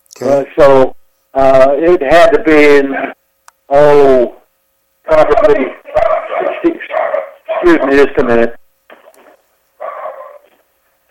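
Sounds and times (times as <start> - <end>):
speech: 0.2 - 4.4, 5.1 - 5.8, 7.6 - 8.6
dog moaning bark-like vocalisations: 9.8 - 10.6.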